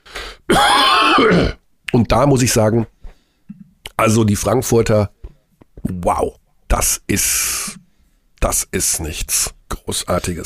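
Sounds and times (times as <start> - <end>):
person clearing throat: 0.5 - 1.6
speech: 1.2 - 3.0, 4.0 - 5.2, 5.8 - 7.8, 8.4 - 10.4.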